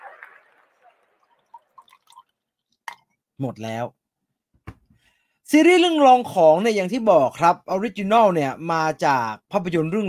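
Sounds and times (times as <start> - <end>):
tea drips: 0.8 - 3.1
tea pouring into a cup: 1.4 - 3.0
speech: 3.4 - 4.0, 5.5 - 10.0.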